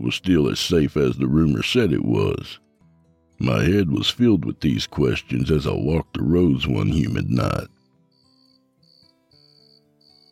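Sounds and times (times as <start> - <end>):
speech: 0.0 - 2.6, 3.4 - 7.8
crickets chirping on a humid night along a road: 7.4 - 10.3.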